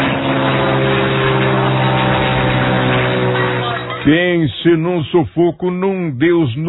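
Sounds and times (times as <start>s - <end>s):
small propeller airplane engine droning: 0.0s - 4.9s
speech: 4.0s - 6.6s.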